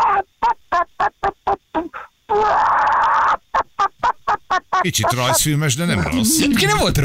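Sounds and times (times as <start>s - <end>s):
person imitating a clucking hen: 0.0s - 3.9s, 6.0s - 6.9s
speech: 4.8s - 7.0s.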